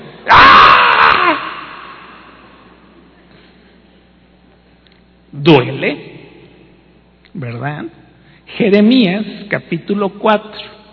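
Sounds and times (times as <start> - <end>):
voice imitating a pregnant woman screaming in labour pain: 0.2 - 2.4
speech: 5.4 - 6.1, 7.4 - 10.8.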